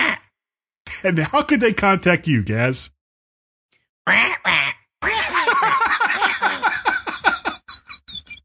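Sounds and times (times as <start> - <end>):
person imitating parrot squawks and raspy chattering: 0.0 - 0.3, 4.1 - 5.3
speech: 1.0 - 3.0, 4.0 - 4.8
laughter: 5.0 - 8.2.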